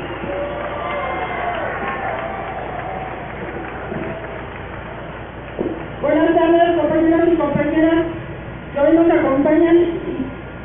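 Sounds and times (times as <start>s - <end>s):
crowd applauding at an outdoor rally: 0.0s - 6.0s
speech: 7.2s - 8.2s, 8.8s - 10.2s.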